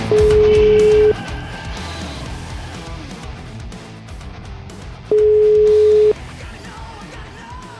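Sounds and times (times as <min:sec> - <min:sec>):
telephone ringback tone while placing a call: 0:00.1 - 0:01.2, 0:05.1 - 0:06.1.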